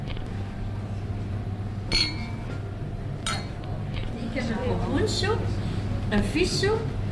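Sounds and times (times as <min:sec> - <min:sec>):
low steady room hum: 0:00.0 - 0:07.1
glasses clinking in a toast: 0:01.9 - 0:02.6, 0:03.2 - 0:03.6
speech: 0:04.4 - 0:07.0.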